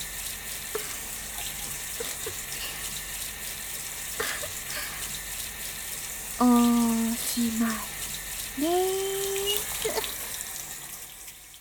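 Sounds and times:
hot water running from a tap: 0.0 - 11.5
speech: 7.4 - 7.9, 8.6 - 9.0.

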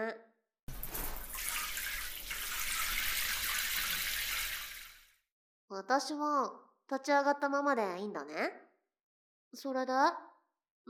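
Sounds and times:
speech: 0.0 - 0.3, 5.7 - 8.6, 9.5 - 10.3
shower water running: 0.7 - 5.2.

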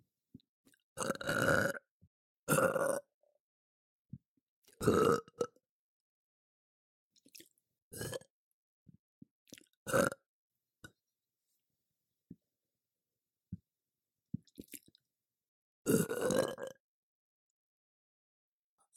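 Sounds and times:
person burping with low rumbling belches: 1.0 - 1.9, 2.5 - 3.1, 4.8 - 5.5, 9.9 - 10.2, 15.9 - 16.8.

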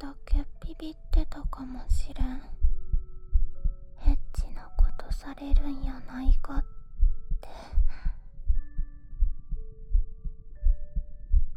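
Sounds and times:
heartbeat thumping: 0.0 - 11.5
soft sustained electronic tones: 0.0 - 11.5
speech: 0.8 - 2.6, 5.1 - 6.7.

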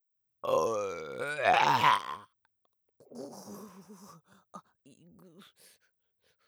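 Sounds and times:
croaky gurgling belches: 0.4 - 2.3
long loud voiced burp: 0.4 - 2.3.

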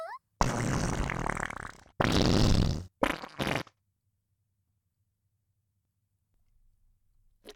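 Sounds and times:
girl farting: 0.4 - 3.8.

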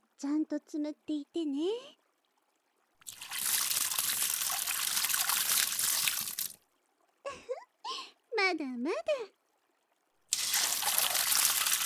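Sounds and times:
speech: 0.2 - 2.0, 8.4 - 9.4
water poured over hair to rinse it: 3.1 - 6.6, 10.3 - 11.8.

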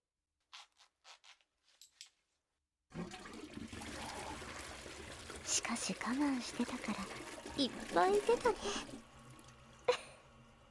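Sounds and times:
toilet flushing: 2.9 - 10.7
speech: 5.6 - 9.0.

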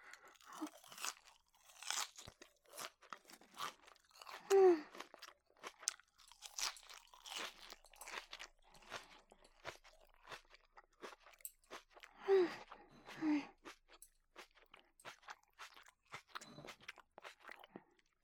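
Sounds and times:
crunchy salad being eaten: 0.1 - 17.7.

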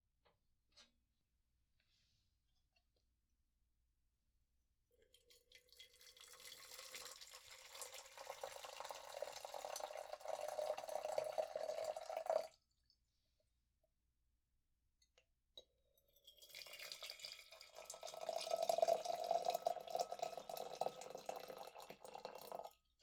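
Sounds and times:
coffee dripping during brewing: 5.0 - 12.6, 16.2 - 23.0.

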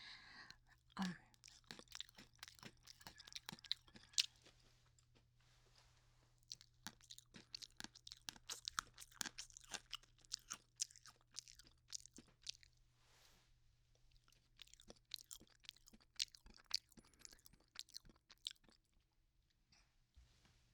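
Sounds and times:
crunching and chewing extra-thin chocolate biscuit sticks: 0.5 - 5.2, 6.4 - 12.8, 14.0 - 19.1.

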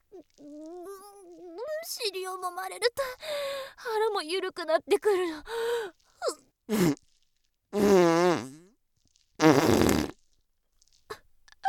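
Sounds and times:
speech: 1.8 - 7.0
farts: 6.7 - 8.8, 9.4 - 10.3.

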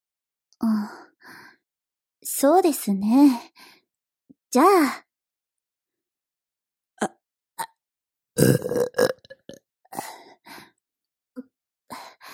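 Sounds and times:
speech: 2.2 - 3.7, 4.5 - 5.0, 8.4 - 9.0
person burping: 7.0 - 7.8, 8.4 - 9.6.

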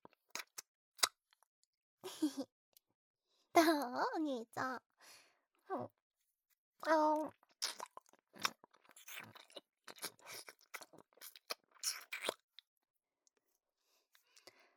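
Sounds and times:
speech: 3.6 - 6.0, 6.8 - 7.4
wet chewing and smacking of cake being eaten: 7.4 - 12.4.

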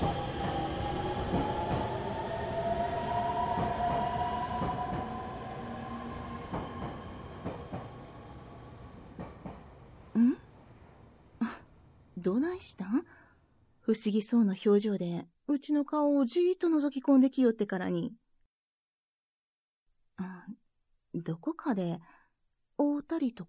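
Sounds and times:
crowded commuter train running with continuous rumble: 0.0 - 11.4
speech: 12.2 - 13.2, 13.9 - 18.2, 21.1 - 22.2, 22.8 - 23.4.

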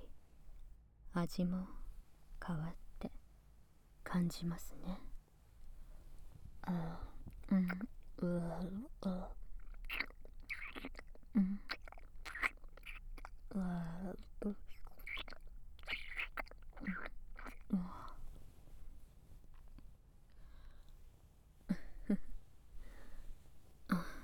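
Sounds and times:
speech: 1.2 - 1.8, 2.4 - 3.2, 4.1 - 5.1, 6.6 - 10.1, 10.8 - 11.8, 13.5 - 14.6
chewing food while eating: 7.2 - 18.3
crunchy bites of food: 9.6 - 13.5, 14.1 - 17.7.

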